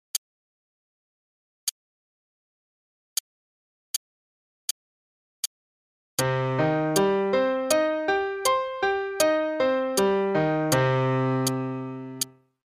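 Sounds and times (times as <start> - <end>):
C minor arpeggios over two octaves: 6.2 - 12.4.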